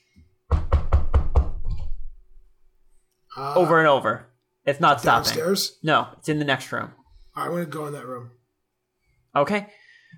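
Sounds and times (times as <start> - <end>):
heavy knocking on a door: 0.5 - 1.8
speech: 3.4 - 8.4, 9.3 - 10.1.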